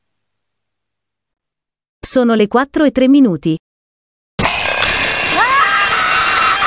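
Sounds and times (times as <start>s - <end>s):
speech: 2.1s - 3.7s
alarm clock with metallic ringing: 4.4s - 6.6s.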